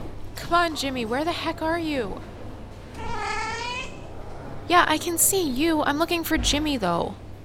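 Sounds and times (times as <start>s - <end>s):
speech: 0.5s - 2.3s, 4.7s - 7.2s
cat meowing: 3.0s - 4.1s.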